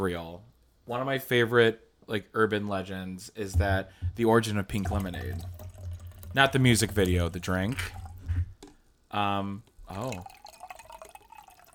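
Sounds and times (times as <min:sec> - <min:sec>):
speech: 0:00.0 - 0:05.6, 0:06.3 - 0:08.0, 0:09.1 - 0:10.4
faint trickles and drips of rum: 0:03.6 - 0:08.8, 0:09.6 - 0:11.7
woman pouring rum into a glass: 0:04.7 - 0:08.6, 0:09.8 - 0:11.7.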